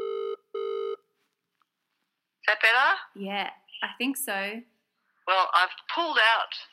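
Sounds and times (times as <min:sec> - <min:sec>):
telephone ringing on an outgoing call: 0:00.0 - 0:01.0
speech: 0:02.5 - 0:04.7, 0:05.3 - 0:06.7.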